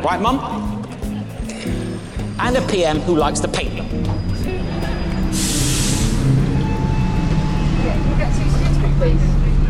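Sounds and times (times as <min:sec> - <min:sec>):
speech: 0:00.0 - 0:00.8, 0:02.4 - 0:04.3, 0:09.0 - 0:09.5
bus engine rumbling low while passengers board: 0:01.1 - 0:09.6
pneumatic hiss of bus air brakes or doors: 0:05.3 - 0:06.4.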